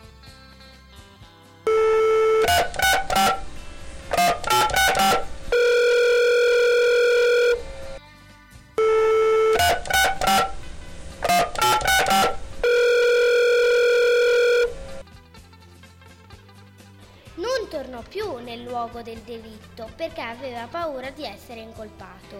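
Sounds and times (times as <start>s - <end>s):
telephone dial tone from a phone booth in a park: 1.7s - 8.0s, 8.8s - 15.0s
speech: 19.0s - 22.3s.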